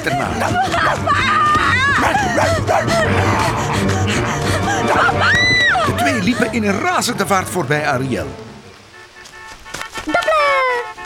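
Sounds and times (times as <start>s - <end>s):
speech: 0.0s - 8.5s
laughter: 0.0s - 8.8s
dense loud backdrop of commotion: 0.0s - 9.2s
girl screaming at full force: 0.6s - 6.0s.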